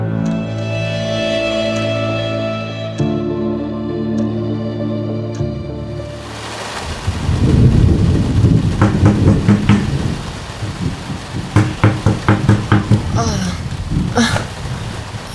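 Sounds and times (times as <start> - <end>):
rain: 0.1 - 15.3
storm rumbling: 5.9 - 15.3
rough knocking on a door: 8.8 - 10.0, 11.6 - 13.2.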